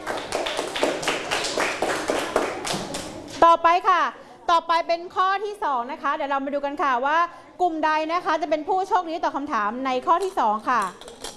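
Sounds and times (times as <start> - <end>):
room full of students clapping in a maths lesson: 0.0 - 3.2
speech: 3.4 - 11.1.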